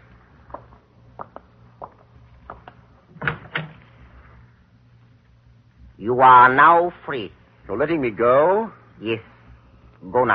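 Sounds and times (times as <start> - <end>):
back door latch clicks and rattles: 3.1 - 3.8
speech: 6.0 - 9.3, 10.0 - 10.3.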